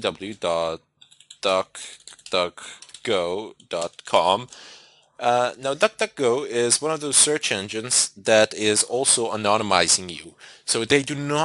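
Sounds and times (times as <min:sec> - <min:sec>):
speech: 0:00.0 - 0:11.4
typing on a computer keyboard: 0:01.0 - 0:04.1.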